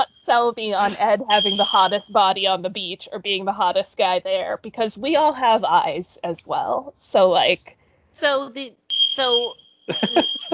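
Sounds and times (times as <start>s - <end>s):
speech: 0.3s - 10.5s
laughter: 0.8s - 1.8s, 9.9s - 10.5s
steady high-pitched smoke alarm tone: 1.2s - 2.6s, 8.9s - 10.5s.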